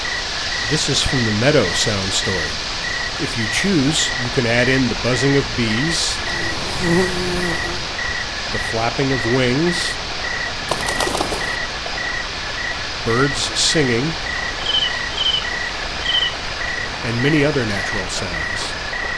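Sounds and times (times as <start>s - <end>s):
meadow ambience: 0.2s - 19.1s.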